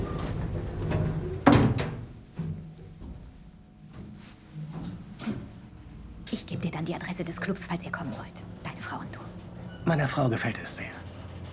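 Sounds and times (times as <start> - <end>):
low steady rumbling hum: 0.0 - 2.5
sliding doors closing: 0.0 - 3.0
speech: 6.4 - 9.2, 9.9 - 11.0.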